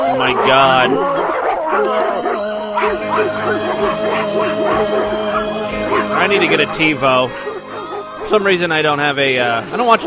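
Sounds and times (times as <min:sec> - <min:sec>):
speech: 0:00.0 - 0:07.5, 0:08.2 - 0:10.0
chorus of many dogs barking and yipping: 0:00.0 - 0:08.9.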